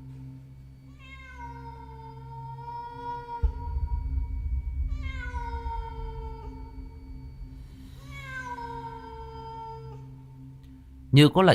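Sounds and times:
low rumbling background: 0.0 - 11.5
cats meowing at night: 0.8 - 4.1, 4.9 - 7.0, 7.9 - 10.2.

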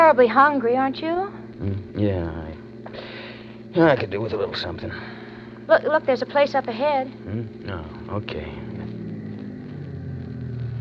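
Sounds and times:
speech: 0.1 - 3.1, 3.7 - 8.6
bus engine rumbling as the bus pulls in: 8.7 - 10.7.

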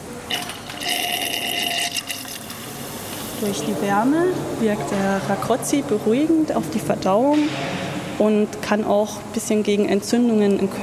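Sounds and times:
warm mineral water from a spring pouring from a tap: 0.3 - 3.5
speech: 3.4 - 10.8.

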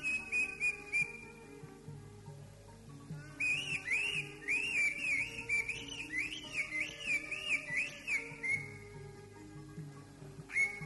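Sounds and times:
greater green leafbird whistled song: 0.0 - 1.3, 3.4 - 8.9, 10.5 - 10.8.

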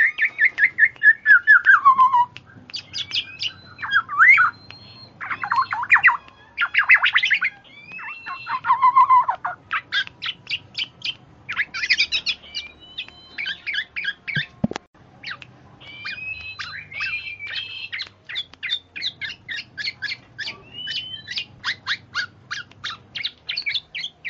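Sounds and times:
female black-naped oriole chattering song: 0.0 - 14.6, 15.2 - 24.2.

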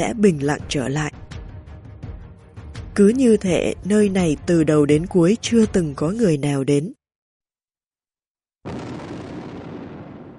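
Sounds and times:
speech: 0.0 - 1.2, 3.0 - 7.0
explosion of a huge hand bursting apart in mid-air: 8.7 - 10.3.

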